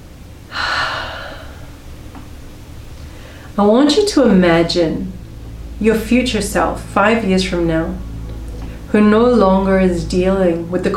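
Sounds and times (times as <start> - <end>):
deep inhalation during a guided eyes-closed relaxation exercise: 0.5 - 1.8, 3.0 - 3.6
speech: 3.6 - 5.2, 5.8 - 8.1, 8.9 - 10.9.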